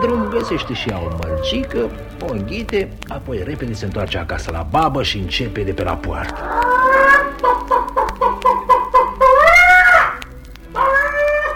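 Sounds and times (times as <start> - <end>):
hen cackling as it jumps off its nest: 0.0 - 3.0, 6.2 - 11.5
speech: 0.0 - 6.6.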